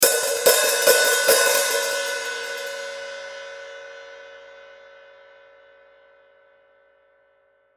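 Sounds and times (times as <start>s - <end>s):
Zildjian Avedis 14 Inch open hi-hat hits: 0.0s - 3.0s.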